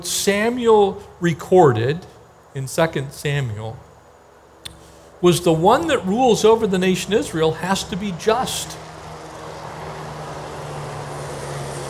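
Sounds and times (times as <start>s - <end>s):
speech: 0.0s - 3.9s, 5.2s - 8.9s
helicopter flying overhead: 5.5s - 11.8s.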